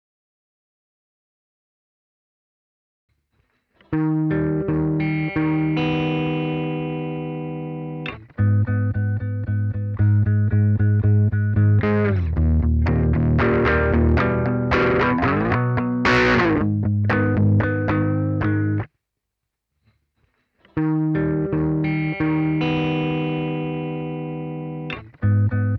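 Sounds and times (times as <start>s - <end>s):
guitar: 3.7s - 18.9s, 20.6s - 25.7s.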